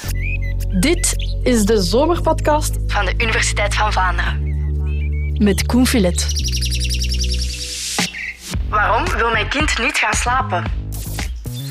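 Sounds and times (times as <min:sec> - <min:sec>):
small birds chirping outdoors: 0:00.0 - 0:08.6, 0:10.9 - 0:11.6
speech: 0:00.1 - 0:04.5, 0:05.4 - 0:07.0, 0:08.7 - 0:10.8.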